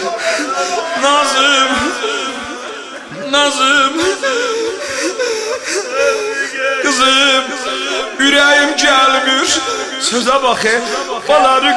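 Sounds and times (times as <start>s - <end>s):
laughter: 0.0s - 11.7s
person crying and sobbing at a mourning gathering for a martyrdom night: 0.0s - 11.7s
speech: 0.6s - 2.2s, 3.3s - 11.7s.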